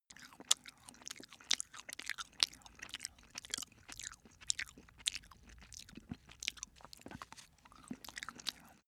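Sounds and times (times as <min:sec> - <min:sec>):
cat eating: 0:00.1 - 0:08.8.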